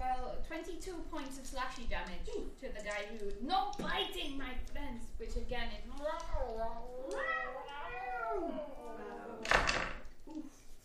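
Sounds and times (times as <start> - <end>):
speech: 0.6 - 8.8
person imitating a cat meowing: 6.8 - 9.6.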